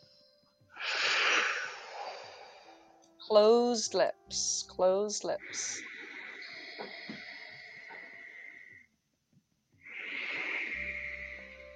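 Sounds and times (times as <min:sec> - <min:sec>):
long raspy breath drawn with a contraction at the back of the throat: 0:00.7 - 0:03.0, 0:05.5 - 0:08.9, 0:09.8 - 0:11.7
speech: 0:03.3 - 0:05.9, 0:06.8 - 0:07.1.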